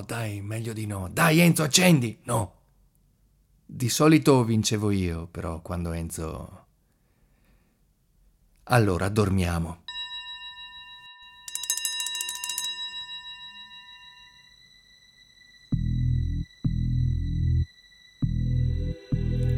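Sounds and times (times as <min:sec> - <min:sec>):
speech: 0:00.0 - 0:02.6, 0:03.7 - 0:06.6, 0:08.7 - 0:09.9
telephone bell ringing at night: 0:09.9 - 0:15.5
steady electronic tone: 0:13.0 - 0:19.5.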